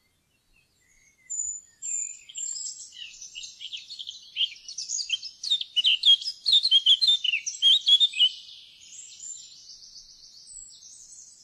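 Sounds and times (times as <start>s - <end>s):
Eurasian blackcap warbling song: 1.3s - 9.7s.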